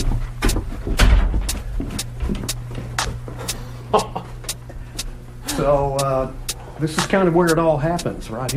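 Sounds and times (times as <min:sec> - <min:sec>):
knocks and clicks: 0:00.0 - 0:03.2
steady low electrical hum: 0:00.0 - 0:08.5
heavy basement door pulled shut with a thud: 0:01.0 - 0:01.5
speech: 0:03.9 - 0:04.2, 0:05.6 - 0:08.5.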